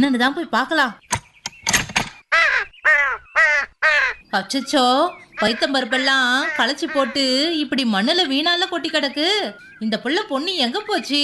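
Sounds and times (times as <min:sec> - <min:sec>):
speech: 0:00.0 - 0:01.0, 0:03.9 - 0:11.2
crow cawing loud and close: 0:02.3 - 0:04.2, 0:05.4 - 0:07.5.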